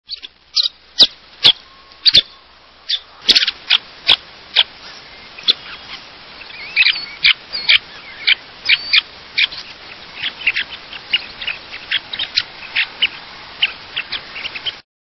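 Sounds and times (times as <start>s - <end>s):
Semipalmated Sandpiper singing: 0.1s - 14.8s.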